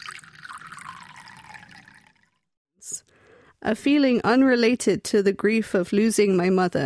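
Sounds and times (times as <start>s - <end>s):
drink being poured into a glass: 0.0s - 2.5s
speech: 3.6s - 6.8s.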